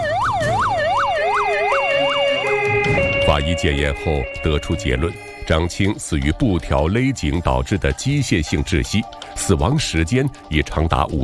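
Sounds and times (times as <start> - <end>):
police car and ambulance sirens wailing: 0.0 - 6.0
speech: 3.3 - 11.2.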